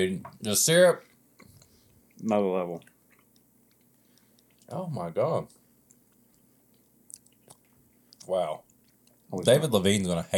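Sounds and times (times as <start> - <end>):
speech: 0.0 - 1.1, 2.2 - 2.9, 4.7 - 5.6, 8.3 - 8.6, 9.3 - 10.3
low steady hum: 0.0 - 10.3
chewing food: 1.0 - 4.8, 5.4 - 9.4.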